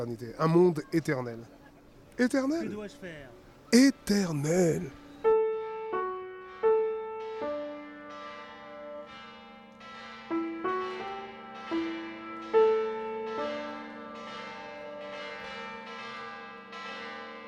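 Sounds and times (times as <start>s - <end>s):
speech: 0.0s - 1.6s, 2.2s - 5.0s
church bell peal: 3.8s - 17.4s.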